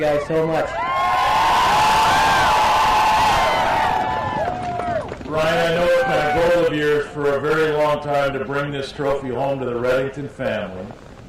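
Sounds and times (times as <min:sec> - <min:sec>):
speech: 0:00.0 - 0:00.8, 0:05.3 - 0:11.1
large crowd of fans cheering and whooping for a dog team at a race: 0:00.6 - 0:06.7.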